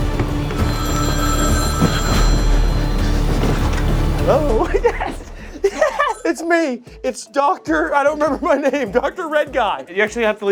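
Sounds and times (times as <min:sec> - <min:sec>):
telephone bell ringing: 0:00.1 - 0:03.7
laughter: 0:04.3 - 0:06.3, 0:07.8 - 0:09.3
speech: 0:06.5 - 0:10.5.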